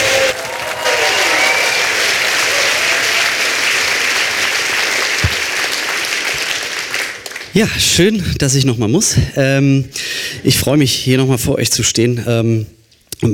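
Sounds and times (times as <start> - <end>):
large audience applauding loudly: 0.0 - 7.6
speech: 7.6 - 13.3.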